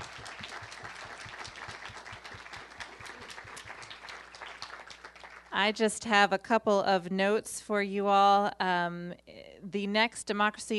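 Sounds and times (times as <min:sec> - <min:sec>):
audience applause for a panel: 0:00.0 - 0:05.5
speech: 0:05.6 - 0:10.7.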